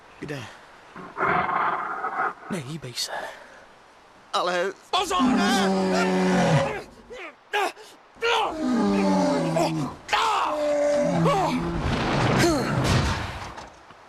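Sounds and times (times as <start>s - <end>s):
speech: 0.2s - 3.4s, 4.4s - 6.8s
bear roaring: 1.0s - 2.5s, 5.1s - 7.0s, 8.4s - 12.9s.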